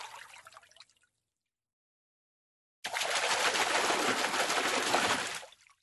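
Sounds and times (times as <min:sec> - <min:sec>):
fish splashing: 0:02.9 - 0:05.5.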